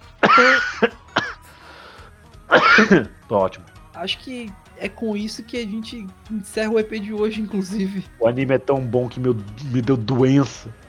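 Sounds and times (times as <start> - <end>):
person coughing: 0.2 - 1.4, 2.5 - 3.0
laughter: 0.3 - 0.9, 4.0 - 8.1
speech: 0.4 - 1.0, 2.8 - 10.8.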